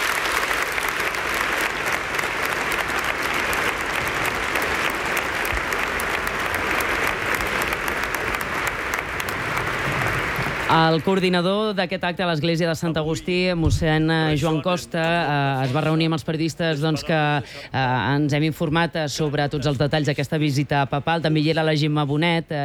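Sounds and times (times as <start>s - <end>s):
large audience applauding: 0.0s - 11.2s
speech: 10.7s - 22.6s.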